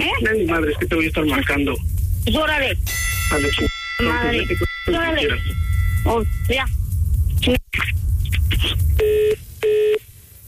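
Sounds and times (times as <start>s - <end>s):
speech: 0.1s - 6.8s, 7.4s - 10.0s
telephone tone after the other party hangs up: 9.0s - 10.0s.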